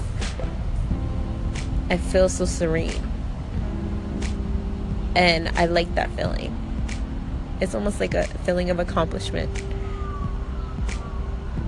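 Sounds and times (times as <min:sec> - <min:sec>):
low traffic rumble: 0:00.0 - 0:11.6
speech: 0:01.9 - 0:03.1, 0:05.2 - 0:06.6, 0:07.6 - 0:09.7
emergency siren on a college campus: 0:09.7 - 0:11.6.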